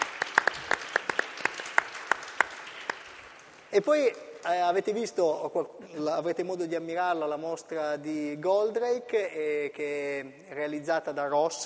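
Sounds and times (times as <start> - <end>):
small audience applauding: 0.0 - 3.7
speech: 3.7 - 11.6.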